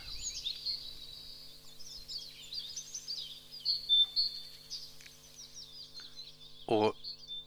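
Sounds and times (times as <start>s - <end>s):
great tit song with two-syllable phrases: 0.0s - 7.4s
speech: 6.7s - 7.0s.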